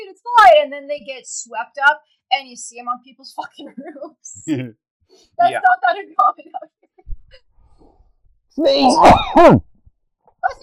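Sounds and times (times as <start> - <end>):
speech: 0.6 - 7.5, 8.6 - 9.7, 10.4 - 10.6
person sneezing: 8.7 - 9.6.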